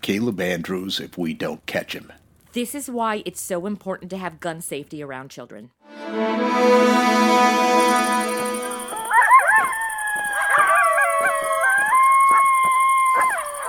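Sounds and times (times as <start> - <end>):
speech: 0.0 - 8.1
pack of coyotes howling and yipping: 9.0 - 13.6.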